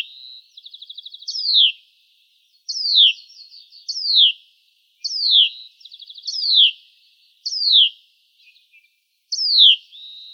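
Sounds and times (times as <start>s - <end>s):
Hutton's vireo giving downslurred calls: 0.8s - 1.8s, 2.7s - 4.4s, 6.2s - 6.8s, 7.4s - 10.3s
speech: 2.8s - 3.3s, 4.0s - 4.5s.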